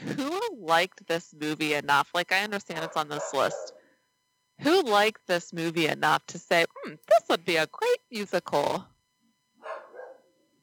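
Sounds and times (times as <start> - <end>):
speech: 0.1 - 3.8, 4.6 - 8.9
female dog barking faintly: 2.8 - 3.8, 9.6 - 10.3.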